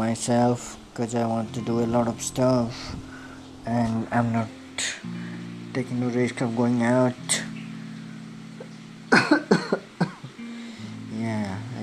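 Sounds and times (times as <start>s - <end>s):
speech: 0.0s - 7.4s
harsh coughs from something caught in the throat: 9.1s - 10.4s.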